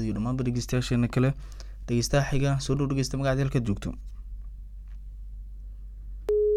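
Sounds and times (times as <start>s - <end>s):
speech: 0.0s - 4.2s
faint low hum: 0.0s - 6.5s
telephone busy tone after a call line drops: 6.3s - 6.5s.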